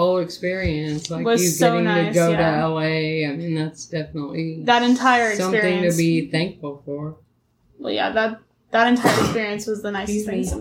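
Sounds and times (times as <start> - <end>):
speech: 0.2 - 7.2, 7.8 - 10.6
sneeze: 9.0 - 9.5.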